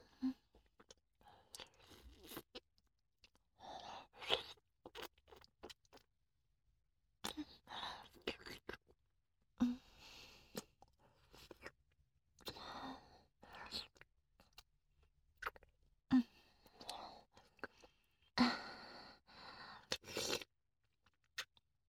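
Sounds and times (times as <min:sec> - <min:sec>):
chewing and crunching of food: 0:00.0 - 0:06.1, 0:07.2 - 0:09.0, 0:10.3 - 0:12.7, 0:13.4 - 0:14.7, 0:15.3 - 0:15.8, 0:16.6 - 0:18.4, 0:19.8 - 0:21.6.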